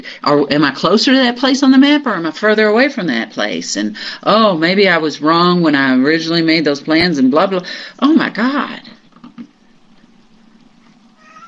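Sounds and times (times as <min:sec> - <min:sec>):
speech: 0:00.0 - 0:08.9
steady low hum: 0:00.0 - 0:11.4
cat meowing: 0:11.2 - 0:11.4.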